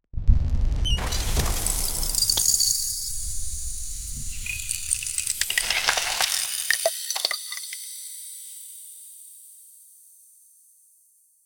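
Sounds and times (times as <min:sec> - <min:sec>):
magical ice cracking: 0:01.0 - 0:03.4, 0:04.0 - 0:07.8.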